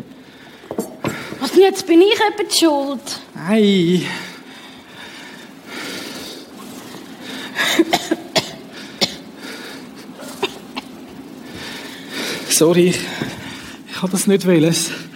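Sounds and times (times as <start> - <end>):
speech: 1.4 - 4.3, 12.6 - 13.4, 14.0 - 15.1
person coughing in a rough fit: 7.6 - 9.2.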